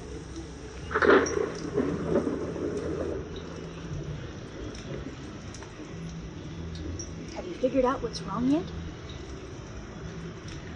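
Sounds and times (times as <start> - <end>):
thunder rumbling during a stormy night: 0.0 - 4.7
speech: 7.7 - 8.8.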